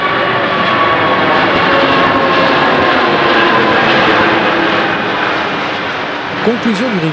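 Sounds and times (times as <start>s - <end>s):
Airbus A380 airliner flying over near the runways on its second test flight: 0.0s - 7.1s
speech: 6.4s - 7.1s.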